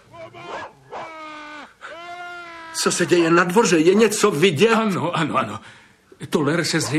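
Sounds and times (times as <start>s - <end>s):
dog barking: 0.0s - 1.3s, 3.0s - 3.8s
dog giving long high-pitched whimpering whines: 0.0s - 3.5s
speech: 0.2s - 0.5s, 2.8s - 6.9s.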